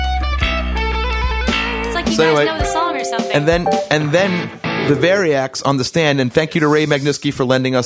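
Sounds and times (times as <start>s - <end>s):
electric guitar through a fully cranked amp playing chords with effects: 0.1s - 5.0s
speech: 2.2s - 7.8s.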